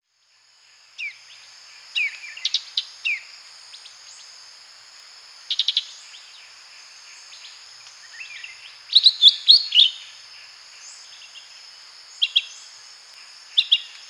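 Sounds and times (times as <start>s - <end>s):
shrill insect background: 0.0s - 14.0s
Lesser green leafbird singing sweet chirps and whistled runs: 8.1s - 10.0s.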